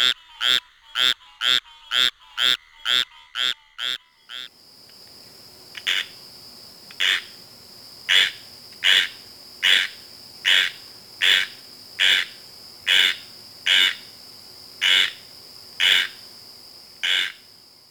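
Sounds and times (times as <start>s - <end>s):
squirrel treefrog raspy calls: 0.0s - 4.6s, 5.7s - 6.2s, 6.9s - 7.4s, 8.1s - 14.2s, 14.8s - 16.3s, 17.0s - 17.6s.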